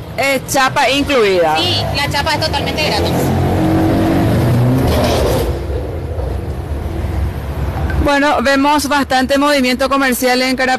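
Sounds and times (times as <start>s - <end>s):
steady roar of vehicles on a busy road: 0.0s - 10.7s
speech: 0.2s - 3.5s, 8.0s - 10.7s
loud car engine revving and passing: 1.1s - 7.7s.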